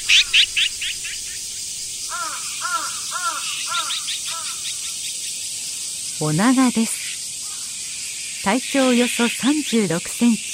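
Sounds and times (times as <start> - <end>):
azure-winged magpie harsh rasping calls: 0.0 - 1.3, 2.1 - 4.8
azure-winged magpie softer arched whistled notes: 0.0 - 1.6
steady high hiss: 0.0 - 10.5.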